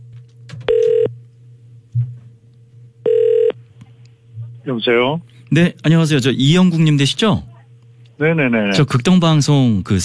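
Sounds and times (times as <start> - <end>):
low steady hum: 0.0 - 10.0
electronic ringback tones from a phone line: 0.7 - 1.1, 3.0 - 3.6
speech: 4.7 - 7.5, 8.2 - 10.0.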